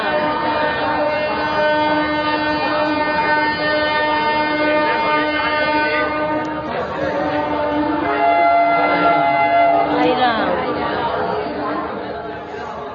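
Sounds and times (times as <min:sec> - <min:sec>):
dense crowd chatter at a busy railway station in Visakhapatnam: 0:00.0 - 0:12.9
steady tonal train sound at a busy railway station: 0:00.0 - 0:12.9.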